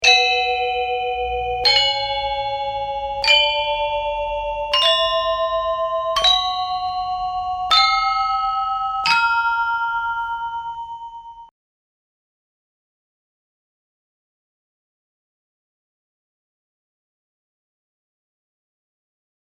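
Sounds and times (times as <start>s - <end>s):
musical scale: 0.0s - 11.5s.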